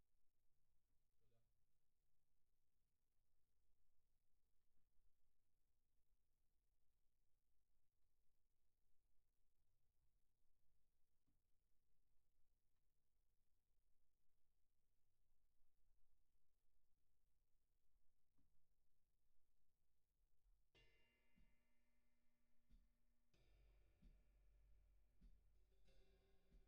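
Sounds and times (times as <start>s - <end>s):
kick drum: 20.4s - 26.6s.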